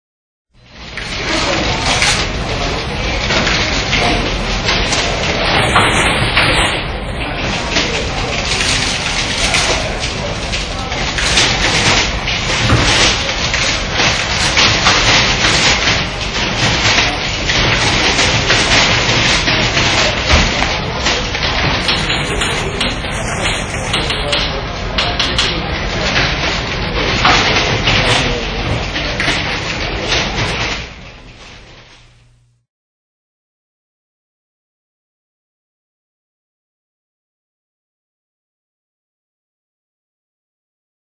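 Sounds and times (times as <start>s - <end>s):
office noise: 0.6s - 32.6s.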